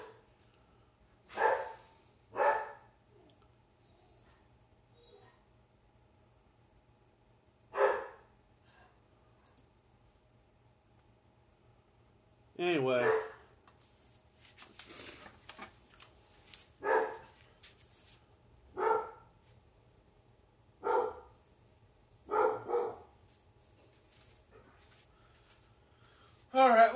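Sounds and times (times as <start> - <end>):
dog barking: 0.0 - 0.2, 1.3 - 2.9, 7.7 - 8.3, 13.0 - 13.5, 16.8 - 17.3, 18.7 - 19.3, 20.8 - 21.3, 22.3 - 23.2
speech: 12.6 - 13.3.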